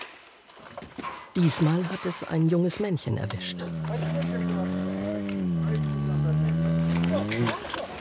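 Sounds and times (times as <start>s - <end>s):
speech: 1.4s - 4.1s, 7.4s - 7.6s
trapped young male bear growling in southern Transylvania: 3.0s - 7.9s
trapped young male bear roaring in southern Transylvania: 3.2s - 7.6s.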